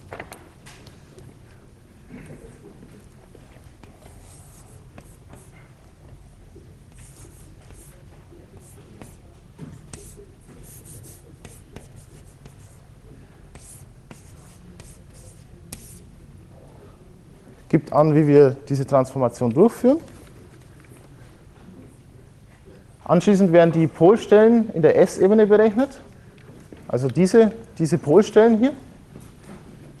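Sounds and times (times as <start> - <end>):
chalk or pen writing an equation on a board: 3.8 - 5.7, 6.9 - 12.8, 13.5 - 16.0
speech: 17.7 - 20.1, 23.1 - 26.1, 26.9 - 28.8.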